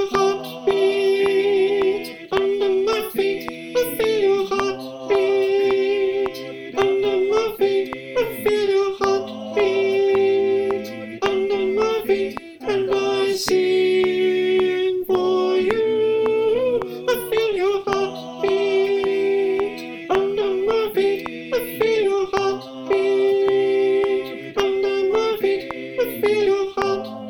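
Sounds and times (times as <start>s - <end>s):
soprano click: 0.1s - 27.1s.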